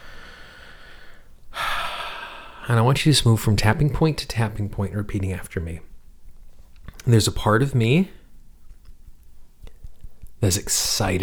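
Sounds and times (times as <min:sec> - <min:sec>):
deep breathy inhale during a guided tapping exercise: 0:00.0 - 0:02.7
low steady hiss: 0:00.0 - 0:11.2
speech: 0:02.7 - 0:05.9, 0:07.0 - 0:08.2, 0:10.4 - 0:11.2.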